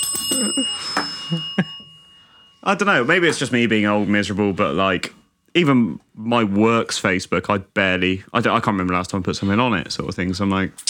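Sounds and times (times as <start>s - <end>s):
bell ringing with bright sustained metallic tone: 0.0s - 5.5s
speech: 0.4s - 1.7s, 2.6s - 10.8s.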